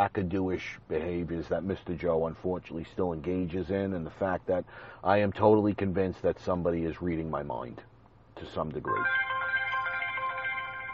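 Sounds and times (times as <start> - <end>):
speech: 0.0 - 9.3
phone ringtone with bright electronic melody: 8.9 - 10.9.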